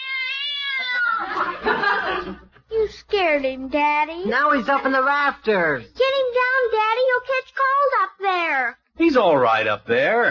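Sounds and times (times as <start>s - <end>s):
cat sitting on top of a car meowing: 0.0s - 1.2s
speech: 0.8s - 10.2s
laughter: 1.0s - 2.6s.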